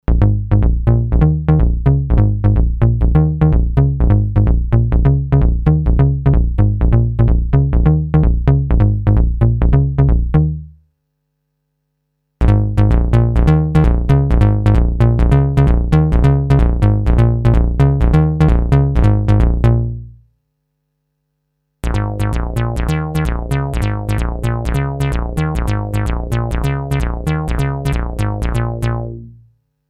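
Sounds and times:
bass line: 0.0s - 10.8s, 12.4s - 20.3s, 21.8s - 29.6s.

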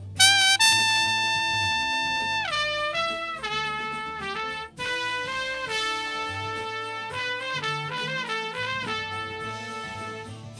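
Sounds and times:
doubled trumpet: 0.0s - 10.5s.

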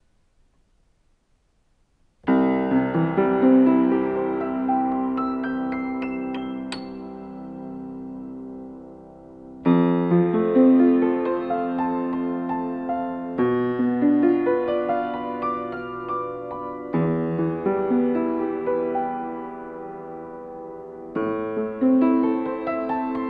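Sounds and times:
piano with open lid: 0.0s - 23.2s.

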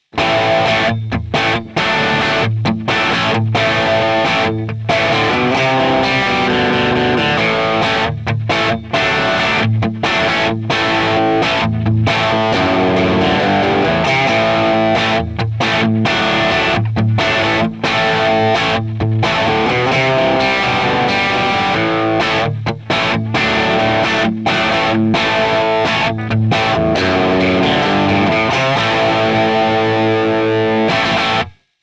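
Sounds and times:
Epiphone Les Paul electric guitar with bridge pickup distortion: 0.0s - 31.8s.

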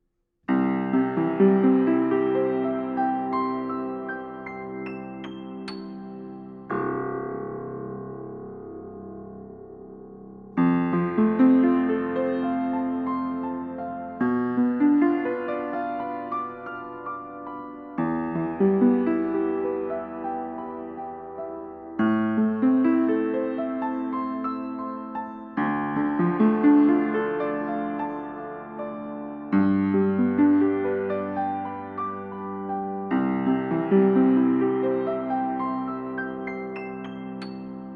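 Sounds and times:
piano recorded with Audio Technica 803 mic outside wall: 0.0s - 37.9s.

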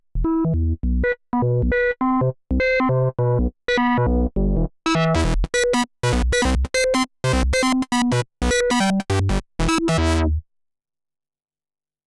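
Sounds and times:
Binson Echorec synthesizer without effects: 0.2s - 10.4s.

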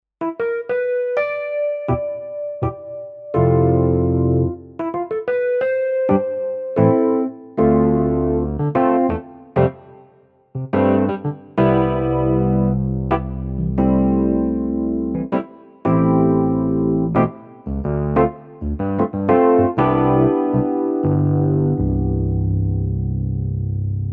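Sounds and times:
electric piano: 0.2s - 10.0s, 10.6s - 24.1s.

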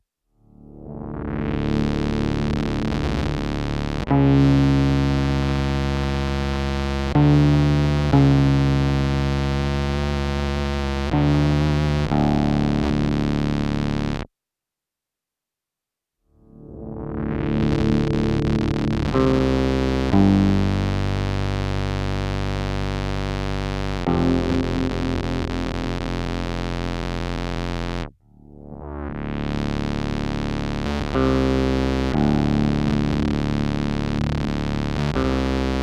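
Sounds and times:
square wave synth tone with long attack: 0.6s - 14.2s, 16.4s - 35.8s.

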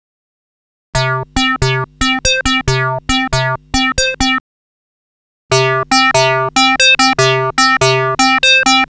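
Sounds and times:
ring modulator effect comparison: 1.0s - 4.4s, 5.5s - 8.9s.

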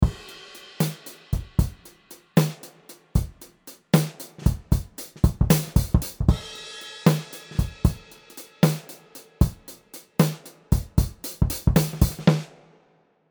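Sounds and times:
vintage dry drum kit: 0.0s - 13.0s.

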